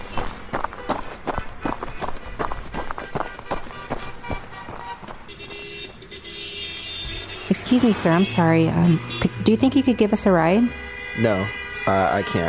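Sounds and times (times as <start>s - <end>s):
footsteps of someone jogging through traffic toward a gas station: 0.0s - 6.0s
busy traffic: 0.0s - 12.4s
car horn or alarm tone: 0.0s - 12.4s
speech: 7.6s - 12.4s.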